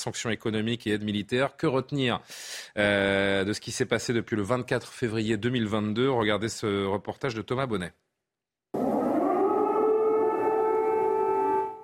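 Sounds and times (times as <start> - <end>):
speech: 0.0 - 8.0
air raid siren wailing at night in Kyiv Ukraine during the war: 8.8 - 11.8.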